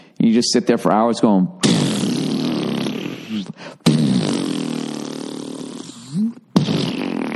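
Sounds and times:
speech: 0.2s - 2.0s, 6.1s - 6.4s
person vocally imitating springy door stopper twang: 1.6s - 7.3s.

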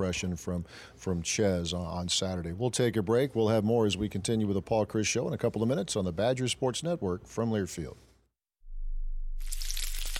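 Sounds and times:
speech: 0.0s - 8.1s
low hum: 8.6s - 10.1s
bacon sizzling in a pan: 9.4s - 10.1s.

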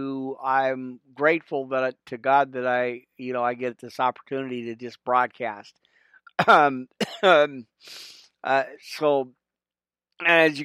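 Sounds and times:
speech: 0.0s - 5.8s, 6.4s - 9.4s, 10.2s - 10.6s
raspy coughs from a person with a cold: 6.3s - 7.5s
breathy intake of air: 7.8s - 8.3s.

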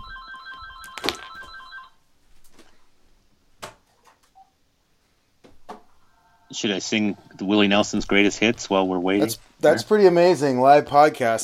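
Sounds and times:
house phone ringing with a bright electronic trill: 0.0s - 2.0s
scattered clicks and small handling noises: 0.8s - 1.5s
speech: 6.5s - 11.4s.

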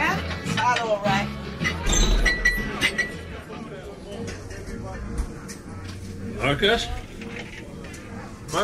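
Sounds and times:
busy room of chatter: 0.0s - 8.6s
speech: 0.7s - 1.4s, 6.5s - 7.0s
drinking glass clinking as it is collected: 1.9s - 3.2s.

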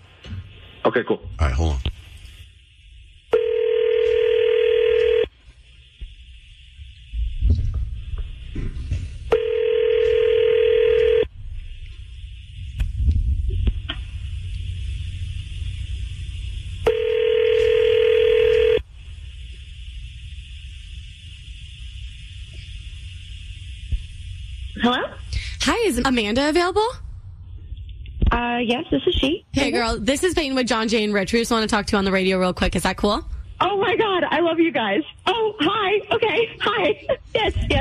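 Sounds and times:
faint low hum: 0.0s - 37.7s
speech: 0.8s - 2.0s, 26.0s - 27.0s, 28.4s - 33.3s, 34.4s - 37.7s
loud steady electronic telephone ringback tones: 9.3s - 11.3s, 16.8s - 18.8s.

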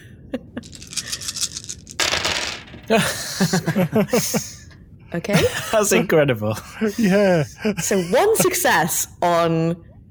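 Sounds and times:
handful of dice rattling when shaken: 0.6s - 2.8s
laughter: 2.9s - 4.6s
speech: 2.9s - 9.9s.

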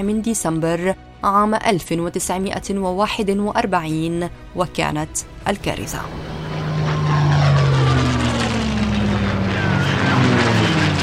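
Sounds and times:
speech: 0.0s - 6.4s
propeller aircraft engines droning as planes pass overhead: 1.5s - 11.0s.

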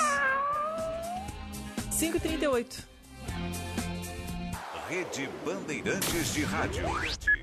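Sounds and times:
long drawn-out cat meow: 0.0s - 1.4s
speech: 2.0s - 3.6s, 4.9s - 7.3s.

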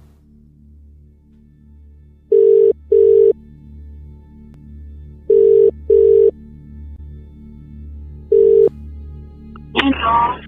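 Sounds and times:
ringback tone of an outgoing telephone call: 2.3s - 3.4s, 5.3s - 6.3s, 8.3s - 8.7s.

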